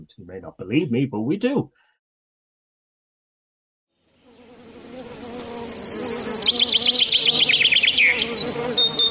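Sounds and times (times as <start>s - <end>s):
speech: 0.1s - 1.9s
bees buzzing: 4.1s - 9.0s
bird chirps and trills: 4.2s - 9.0s.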